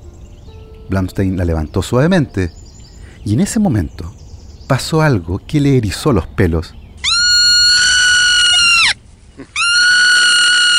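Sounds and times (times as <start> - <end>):
speech: 0.9 - 2.6, 3.2 - 6.8
young marmot distress alarm screams: 7.0 - 10.7.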